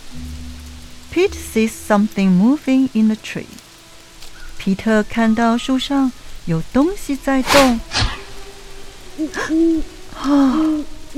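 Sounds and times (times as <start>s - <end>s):
speech: 1.1s - 3.6s, 4.6s - 8.0s, 9.2s - 11.1s
owl hooting: 7.4s - 11.1s.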